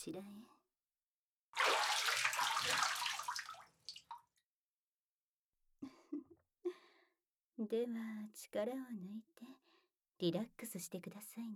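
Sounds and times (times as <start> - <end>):
speech: 0.0 - 0.6, 7.6 - 9.6, 10.2 - 11.5
bath water poured over someone's back to rinse it: 1.6 - 4.3.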